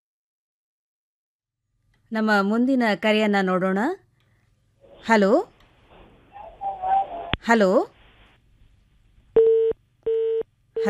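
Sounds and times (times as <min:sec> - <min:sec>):
speech: 0:02.1 - 0:04.0, 0:05.0 - 0:05.5, 0:07.4 - 0:08.0
telephone disconnection tone beeps after a call drops: 0:09.4 - 0:10.8.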